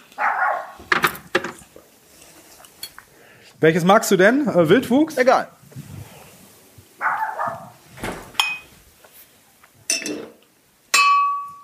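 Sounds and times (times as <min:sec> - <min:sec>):
neighbours' dogs barking: 0:00.0 - 0:00.9, 0:07.0 - 0:07.8
speech: 0:03.6 - 0:05.6
glass knocking together: 0:08.4 - 0:08.8, 0:10.9 - 0:11.6.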